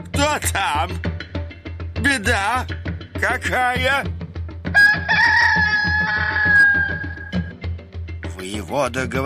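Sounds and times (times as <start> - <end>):
speech: 0.0 - 1.2, 2.0 - 4.8, 8.4 - 9.2
cockerel crowing loudly: 4.7 - 7.5.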